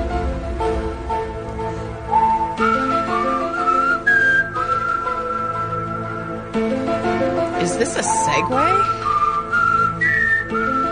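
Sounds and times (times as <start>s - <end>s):
musical backing: 0.0s - 10.9s
person whistling a TV theme tune: 2.1s - 6.4s, 8.1s - 10.9s
speech: 7.9s - 9.0s.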